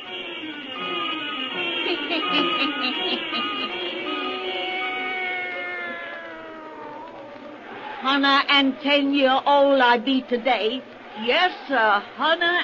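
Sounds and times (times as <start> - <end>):
laughter: 1.6 - 4.9
speech: 2.3 - 3.6, 8.0 - 12.6
black cat meowing: 4.6 - 7.6.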